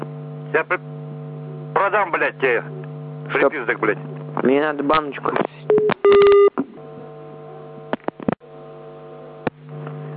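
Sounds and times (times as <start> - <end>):
steady electrical hum: 0.0 - 10.1
speech: 0.5 - 1.0, 1.8 - 6.4
telephone keypad dialing tones: 5.7 - 6.6.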